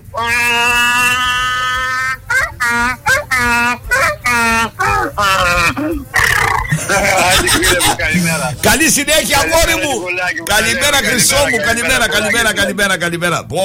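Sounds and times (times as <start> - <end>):
man imitating a donkey's bray: 0.0 - 8.6
laughter: 0.0 - 12.7
speech: 0.2 - 0.8, 8.7 - 13.6.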